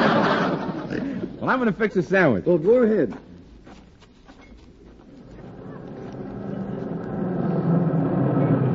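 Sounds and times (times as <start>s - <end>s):
laughter: 0.0s - 1.4s
speech: 1.5s - 3.3s
milk truck engine rumbling as it pulls into a driveway: 5.0s - 8.7s.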